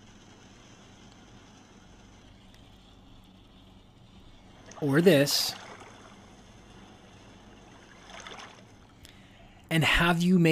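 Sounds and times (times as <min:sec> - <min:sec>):
gentle water waves: 0:04.4 - 0:09.3
speech: 0:04.8 - 0:05.6, 0:09.8 - 0:10.4.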